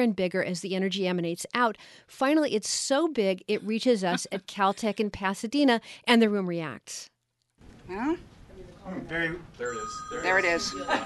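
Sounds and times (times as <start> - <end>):
speech: 0.0 - 7.1, 7.9 - 11.0
phone ringing with a steady electronic tone in a room at Caltech in Pasadena: 9.6 - 11.0.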